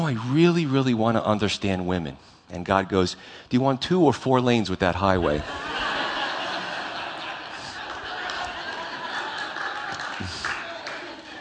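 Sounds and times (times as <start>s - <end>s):
speech: 0.1s - 5.8s
people chuckling and laughing: 5.2s - 11.3s
audience clapping after a joke: 6.6s - 11.3s.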